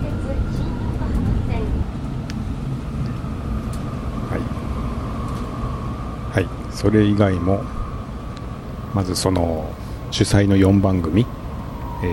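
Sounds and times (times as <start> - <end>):
onboard announcement inside a moving public transport vehicle: 0.0 - 12.1
steady loud low rumble of a moving public transport vehicle: 0.0 - 12.1
speech: 6.4 - 7.8, 8.9 - 11.4.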